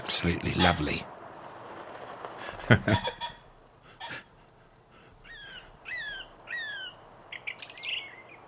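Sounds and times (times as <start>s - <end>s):
song thrush singing in autumn in Norfolk: 0.0s - 8.4s
speech: 0.1s - 1.2s, 2.7s - 3.2s
laughter: 2.4s - 4.5s.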